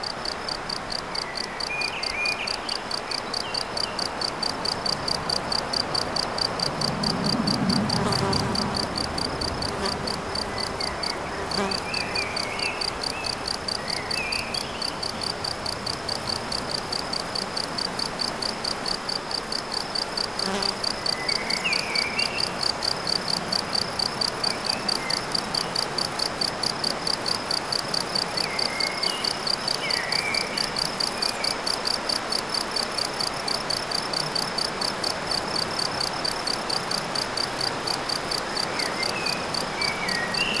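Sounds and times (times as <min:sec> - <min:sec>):
insect chirping: 0:00.0 - 0:40.5.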